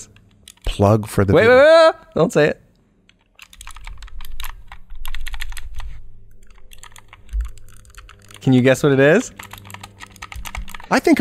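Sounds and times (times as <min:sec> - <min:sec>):
speech: 0:00.8 - 0:02.6, 0:08.4 - 0:09.5, 0:10.9 - 0:11.2
keys pressed on a compact one-handed programmable keyboard: 0:03.1 - 0:05.8, 0:06.4 - 0:11.0.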